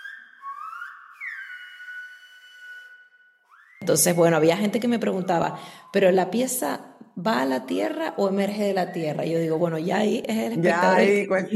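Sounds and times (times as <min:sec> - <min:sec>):
person whistling a sliding and sustained tone: 0:00.0 - 0:04.2
speech: 0:03.8 - 0:11.5.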